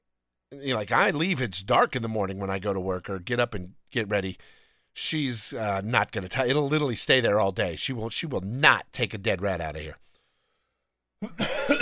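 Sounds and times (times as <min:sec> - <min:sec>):
speech: 0:00.5 - 0:10.0, 0:11.2 - 0:11.8
person coughing with rough hacking cough: 0:11.2 - 0:11.8.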